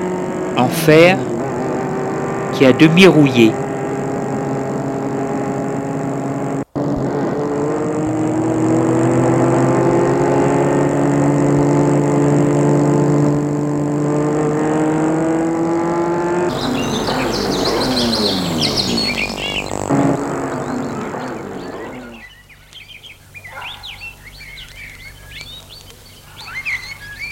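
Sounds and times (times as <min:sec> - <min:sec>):
speech: 0:00.0 - 0:01.3, 0:02.6 - 0:03.6
birds chirping in the countryside: 0:00.0 - 0:06.6, 0:08.7 - 0:27.3
car engine starting and humming: 0:00.0 - 0:23.6
rough rushing noise: 0:16.5 - 0:22.3.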